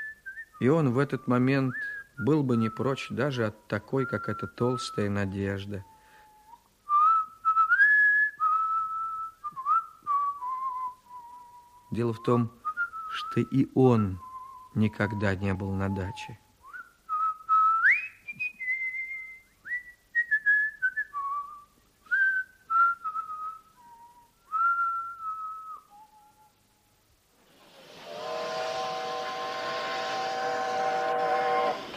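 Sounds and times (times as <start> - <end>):
whistled melody of short and held notes: 0.0 - 26.8
speech: 0.6 - 5.9, 11.9 - 16.4
steam locomotive whistle blast at a railway station: 27.7 - 31.9.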